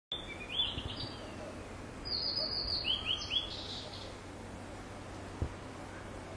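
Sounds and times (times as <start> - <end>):
blue-and-white flycatcher song: 0.1 - 4.2
low background hiss: 0.1 - 6.3.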